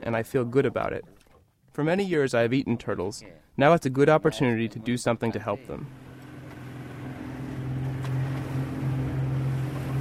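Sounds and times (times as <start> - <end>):
speech: 0.0 - 1.2, 1.8 - 6.0
water noise: 0.0 - 9.9
wind: 0.0 - 9.9
small boat engine droning on the open sea: 5.8 - 9.9.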